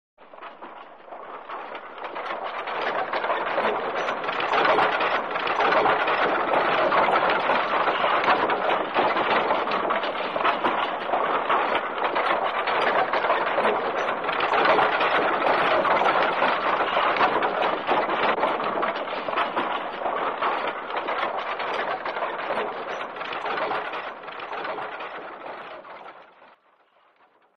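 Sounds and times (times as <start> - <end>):
horse-drawn cart: 0.2 - 27.5.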